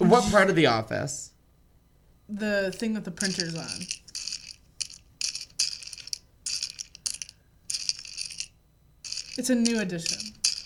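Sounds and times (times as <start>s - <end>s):
speech: 0.0s - 1.3s, 2.3s - 4.0s, 9.4s - 10.4s
jelly beans shaken in a candy bowl: 3.2s - 10.6s.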